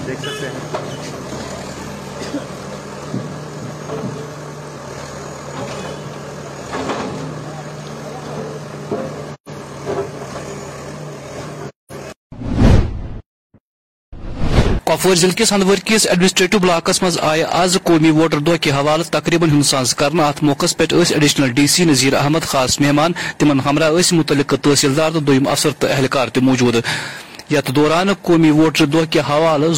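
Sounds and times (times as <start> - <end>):
heavy demolition machinery rumbling: 0.0 - 10.6
speech: 0.1 - 1.6, 2.2 - 3.3, 15.0 - 29.7
loud crashing burst of structure being demolished: 12.4 - 13.2.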